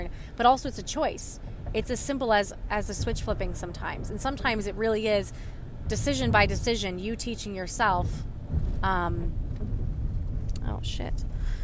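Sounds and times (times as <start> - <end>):
moving car engine rumble: 0.0 - 11.6
speech: 0.1 - 9.7, 10.7 - 11.6.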